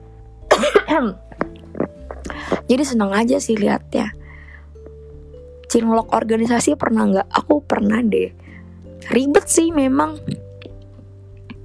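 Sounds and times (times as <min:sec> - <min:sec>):
harsh raspy coughing: 0:00.5 - 0:01.2
speech: 0:00.6 - 0:01.6, 0:02.7 - 0:04.2, 0:05.8 - 0:08.4, 0:09.1 - 0:10.4.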